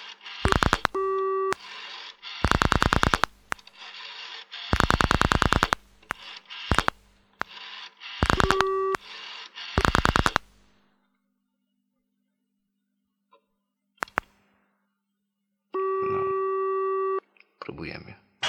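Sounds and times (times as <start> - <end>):
rapid clicking on a telephone line: 0.0 - 10.8, 14.0 - 14.4
telephone line tones after dialing a long number: 0.2 - 3.3, 8.3 - 9.1, 15.8 - 17.2.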